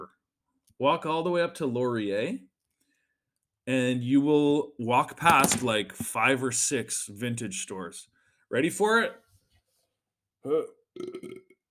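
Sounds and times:
speech: 0.8s - 2.5s, 3.7s - 9.2s, 10.4s - 11.5s
loud burp with a deep throaty rumble: 10.4s - 11.6s.

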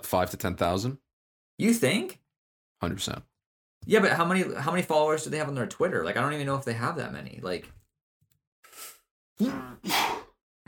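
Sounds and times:
speech: 0.0s - 1.0s, 1.6s - 2.2s, 2.8s - 7.8s, 9.4s - 10.2s
human sneeze: 9.4s - 10.4s.

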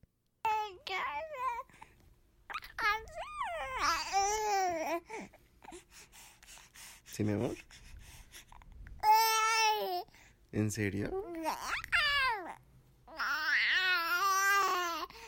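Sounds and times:
three-month-old baby babbling and cooing: 0.5s - 1.9s, 2.5s - 6.0s, 8.3s - 10.2s, 11.1s - 15.2s
speech: 0.7s - 1.8s, 7.2s - 7.8s, 10.5s - 11.8s.

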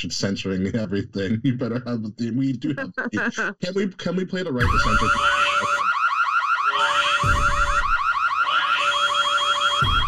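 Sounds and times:
laughter: 0.0s - 5.8s
speech: 0.0s - 5.8s
fire alarm rapid electronic beeping: 4.6s - 10.0s
theme music with sustained synth tones: 4.6s - 10.0s.

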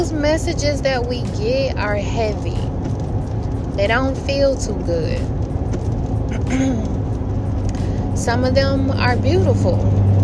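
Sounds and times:
speech: 0.0s - 2.7s, 3.8s - 5.4s, 6.3s - 7.0s, 8.2s - 10.1s
loud truck passing by: 0.0s - 10.2s.

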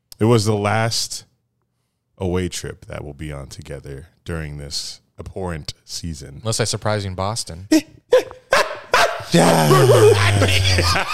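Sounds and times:
speech: 0.2s - 1.3s, 2.2s - 8.0s, 9.3s - 11.1s
dog barking: 8.2s - 9.3s
laughter: 8.5s - 11.1s.

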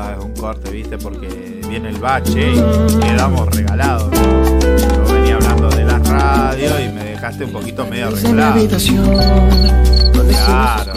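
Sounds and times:
speech: 0.4s - 10.9s
crickets chirping sound effect: 8.9s - 10.9s.

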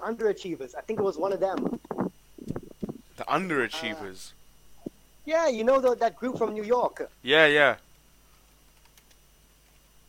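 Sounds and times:
speech: 0.0s - 2.0s, 3.3s - 4.4s, 5.3s - 7.8s
steady low hum: 0.6s - 8.6s
typing on a computer keyboard: 8.7s - 9.2s.

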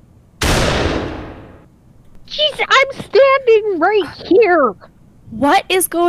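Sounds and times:
single loud gunshot with harsh echo: 0.4s - 1.6s
speech: 2.4s - 6.0s.

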